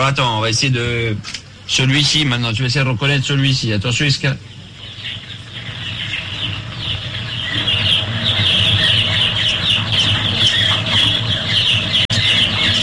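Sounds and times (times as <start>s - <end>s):
speech: 0.0s - 5.2s
steady low hum: 0.0s - 12.8s
chicks peeping in a henhouse: 4.6s - 12.8s.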